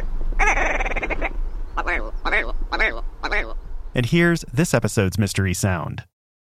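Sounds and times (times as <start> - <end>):
pheasant-type bird of the northern hemisphere calling: 0.0 - 4.0
speech: 4.0 - 6.1.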